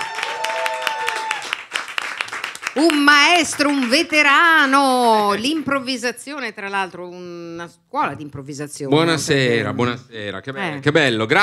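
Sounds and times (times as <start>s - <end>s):
audience applause welcoming a comedian onstage at a live comedy evening: 0.0s - 4.2s
speech: 2.8s - 11.4s.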